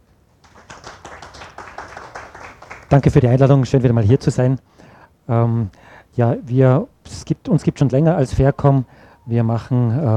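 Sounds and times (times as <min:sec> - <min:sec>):
audience applause: 0:00.4 - 0:03.1
speech: 0:02.9 - 0:10.1.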